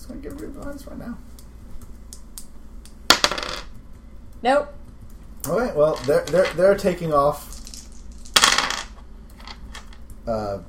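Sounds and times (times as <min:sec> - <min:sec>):
speech: 0:00.2 - 0:01.3, 0:04.4 - 0:04.8, 0:05.4 - 0:07.6, 0:10.3 - 0:10.6
single die rolled onto a hard tabletop for a game check: 0:03.1 - 0:03.7, 0:05.9 - 0:06.6, 0:07.6 - 0:10.0.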